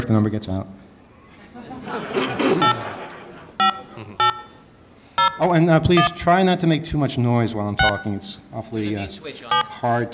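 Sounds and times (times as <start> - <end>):
speech: 0.1 - 0.8, 5.4 - 10.1
laughter: 1.3 - 4.2
touch-tone dialing of a phone number on a telephone line: 2.6 - 2.9, 3.6 - 4.6, 5.2 - 5.4, 7.8 - 8.1, 9.5 - 9.8.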